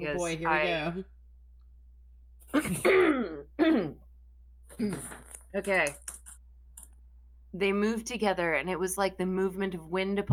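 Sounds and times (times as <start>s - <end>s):
speech: 0.0s - 1.2s, 2.6s - 4.0s, 4.8s - 6.1s, 7.5s - 10.3s
man clearing throat: 2.5s - 4.0s.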